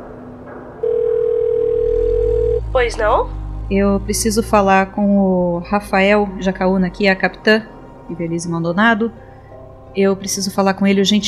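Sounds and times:
faint low rumble: 0:00.0 - 0:09.2
telephone tone while calling a shelter's landline: 0:00.8 - 0:02.6
speech: 0:02.8 - 0:09.2, 0:10.0 - 0:11.2.

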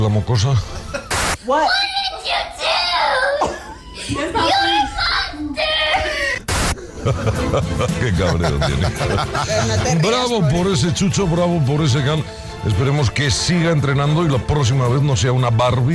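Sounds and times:
speech: 0:00.0 - 0:00.9, 0:01.5 - 0:02.7, 0:04.1 - 0:04.8, 0:07.0 - 0:15.9
young girl crying and screaming: 0:01.7 - 0:06.5
laughter: 0:06.8 - 0:10.6.

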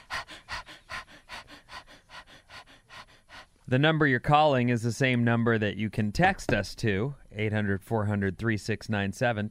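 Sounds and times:
heavy panting breaths in a song intro: 0:00.0 - 0:03.7
speech: 0:03.7 - 0:09.4.

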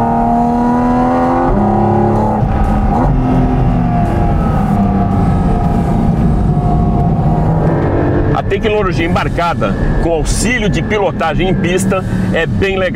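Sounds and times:
car accelerating hard on a race track: 0:00.0 - 0:12.9
speech: 0:08.6 - 0:12.9.

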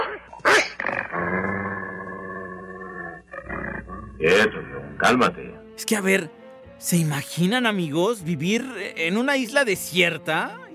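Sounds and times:
approaching wolves growling and snarling: 0:00.0 - 0:05.0
speech: 0:04.2 - 0:10.7.

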